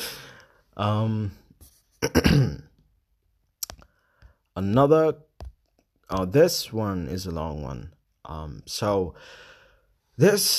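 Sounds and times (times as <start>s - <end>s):
speech: 0.8s - 1.4s, 2.0s - 2.7s, 4.6s - 5.3s, 6.1s - 9.5s, 10.2s - 10.5s
person clearing throat with a drawn-out voiced rasp: 2.0s - 2.7s
person coughing sharply: 2.0s - 2.7s.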